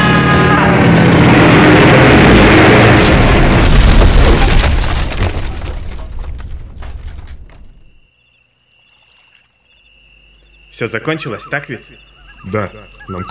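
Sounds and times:
airplane crashing and breaking apart: 0.0s - 7.8s
speech: 10.8s - 13.2s.

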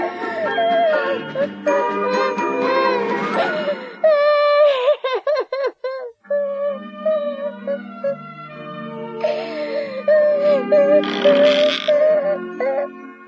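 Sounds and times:
young girl crying and sobbing by a stove in a small hut: 0.0s - 13.1s.

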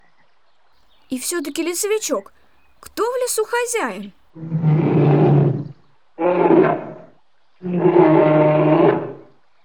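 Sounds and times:
speech: 1.1s - 4.6s
brown bear roar: 6.2s - 9.3s.

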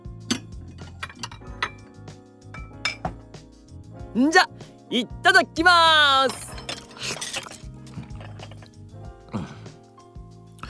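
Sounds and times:
plates and utensils clinking as food is served at a yudofu restaurant in Kyoto: 0.3s - 1.9s, 6.3s - 8.7s
speech: 4.2s - 6.4s.

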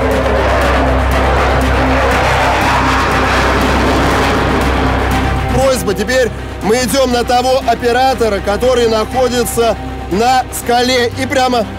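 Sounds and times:
Su-30SM fighter jet performing a barrel roll over Lake Baikal: 0.0s - 7.9s
speech: 5.9s - 11.7s.

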